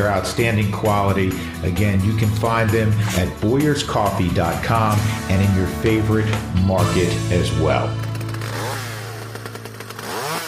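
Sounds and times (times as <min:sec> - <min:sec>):
speech: 0:00.0 - 0:08.1
Stihl leaf blower running: 0:06.9 - 0:10.4.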